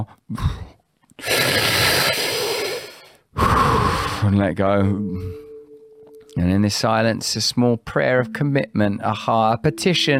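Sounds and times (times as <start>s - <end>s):
speech: 0.0s - 0.6s, 4.2s - 5.4s, 6.4s - 10.1s
deep breath in and out through the mouth: 1.3s - 4.3s.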